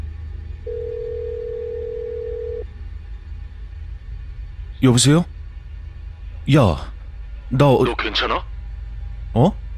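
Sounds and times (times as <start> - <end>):
low rumble: 0.0 - 9.7
phone line electronic ringback tone: 0.7 - 2.6
speech: 4.8 - 5.4, 6.4 - 8.5, 9.3 - 9.6.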